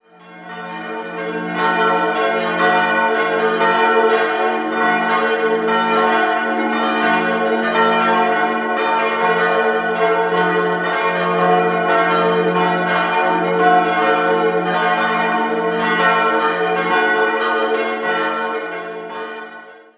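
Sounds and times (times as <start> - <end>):
bells ringing in Pilsach: 0.2 - 19.7.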